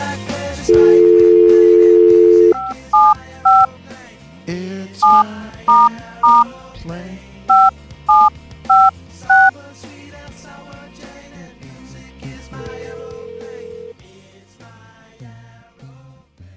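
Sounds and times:
telephone keypad dialing tones: 0.7 - 3.7, 5.0 - 6.4, 7.5 - 9.5, 12.6 - 13.9.

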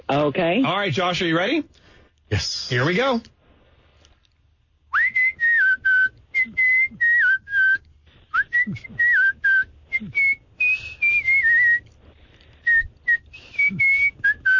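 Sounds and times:
speech: 0.1 - 3.4, 8.7 - 9.0
person whistling a tune: 4.9 - 11.9, 12.6 - 14.5.

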